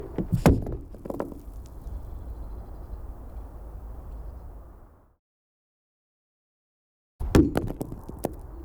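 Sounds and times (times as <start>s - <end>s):
thrown stone hitting frozen lake surface: 0.1s - 1.7s, 7.2s - 8.5s.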